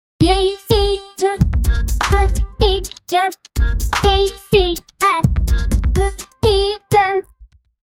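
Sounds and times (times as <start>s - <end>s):
childish song: 0.2s - 7.4s
rap beats: 0.2s - 7.5s.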